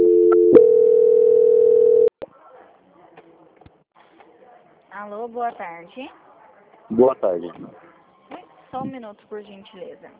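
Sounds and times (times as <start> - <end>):
telephone transfer tone as a bank call is transferred: 0.0 - 2.1
speech: 5.0 - 6.2, 6.9 - 10.1.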